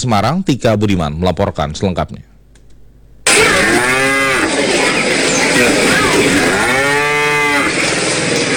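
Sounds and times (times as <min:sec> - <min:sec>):
speech: 0:00.0 - 0:02.3
steady noisy background: 0:02.5 - 0:08.5
dairy cow mooing: 0:03.3 - 0:04.6, 0:05.5 - 0:08.0.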